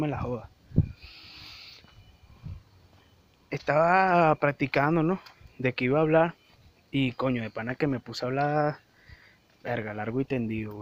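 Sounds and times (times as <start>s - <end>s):
speech: 0.0s - 0.6s, 3.5s - 8.8s, 9.6s - 10.8s
faint steady hiss: 0.0s - 10.8s
small bird calling with short low hooting notes: 0.9s - 1.9s.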